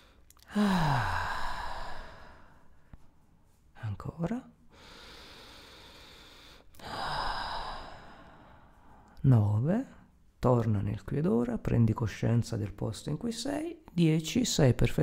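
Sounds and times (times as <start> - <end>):
slow deep breaths in and out: 0.0 - 3.7, 4.6 - 9.2
speech: 0.5 - 1.2, 4.0 - 4.6, 9.2 - 15.0.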